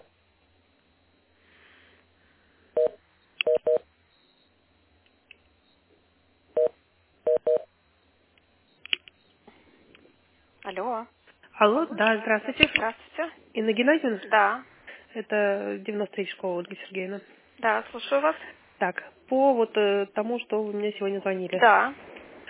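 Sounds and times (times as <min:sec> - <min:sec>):
telephone keypad beeps during a call transfer: 0:02.8 - 0:03.8
speech: 0:10.7 - 0:22.1.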